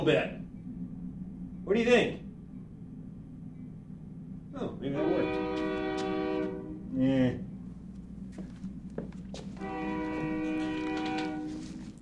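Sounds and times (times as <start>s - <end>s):
speech: 0.0s - 0.4s, 1.7s - 2.2s, 4.6s - 5.8s, 7.0s - 7.5s
low rumbling noise: 0.0s - 12.0s
train horn blowing at an intersection: 4.9s - 7.4s, 9.6s - 12.0s.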